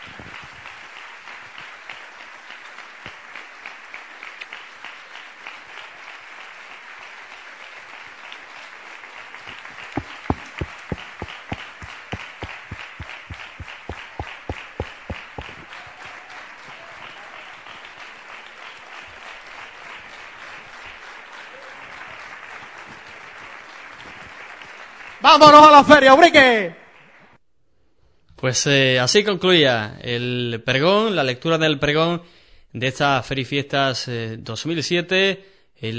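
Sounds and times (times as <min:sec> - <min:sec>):
audience applause after a town fair proclamation speech in Ubrique: 0:00.0 - 0:27.4
speech: 0:25.3 - 0:26.8, 0:28.4 - 0:35.9.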